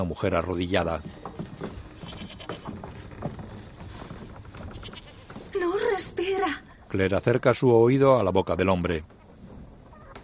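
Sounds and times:
speech: 0.0s - 1.3s, 6.9s - 9.1s
shuffling animal noise: 0.7s - 6.4s, 9.0s - 10.2s
stabled goats bleating in a room aboard a ship: 2.0s - 2.7s, 4.6s - 5.4s.

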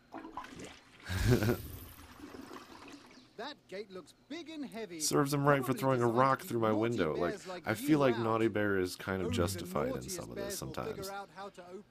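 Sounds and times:
toilet flushing: 0.0s - 3.3s
speech: 1.3s - 1.7s, 3.7s - 11.8s
quiet low murmuring: 9.1s - 11.0s.

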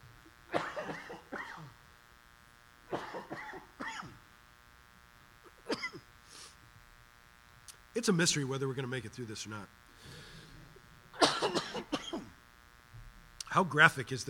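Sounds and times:
harsh raspy hacking coughing: 0.5s - 1.8s, 2.9s - 4.2s, 5.6s - 6.1s, 11.2s - 12.4s
speech: 8.0s - 9.9s, 13.6s - 14.2s.

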